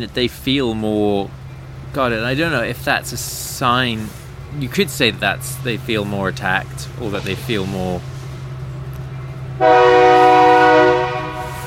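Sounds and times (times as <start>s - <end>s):
speech: 0.0s - 8.1s
low rumble of rail noise: 0.0s - 11.6s
passing train horn blaring: 9.6s - 11.6s.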